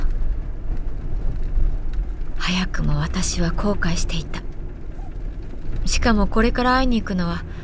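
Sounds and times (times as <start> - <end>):
chartered van rumbling along an expressway through heavy rain: 0.0 - 7.6
speech: 2.5 - 4.4, 5.9 - 7.6.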